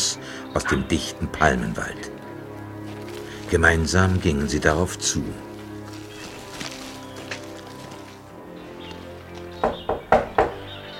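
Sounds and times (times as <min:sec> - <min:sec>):
speech: 0:00.5 - 0:02.2, 0:03.5 - 0:05.5
firm knocks on a massive wooden front door: 0:09.6 - 0:10.7.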